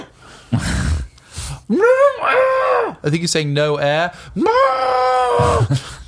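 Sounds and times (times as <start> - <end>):
person screaming in panic: 1.7 - 3.0, 4.4 - 5.8
speech: 1.7 - 6.0.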